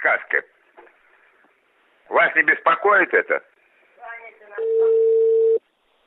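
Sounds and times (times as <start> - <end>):
speech: 0.0 - 0.5, 2.3 - 3.5
loud steady telephone tone: 4.6 - 5.6.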